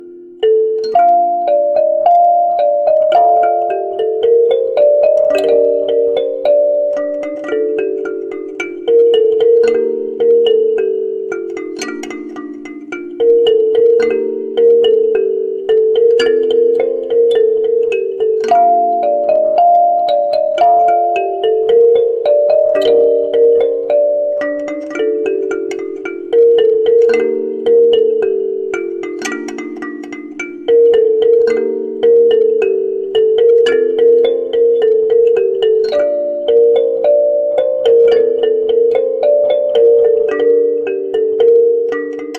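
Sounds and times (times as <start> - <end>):
kalimba canon: 0.0 - 42.3.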